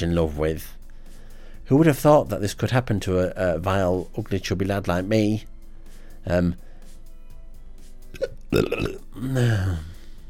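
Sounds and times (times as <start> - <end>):
speech: 0.0 - 0.8, 1.7 - 5.5, 6.2 - 6.7, 8.2 - 9.9
loud throaty burps: 8.2 - 9.9.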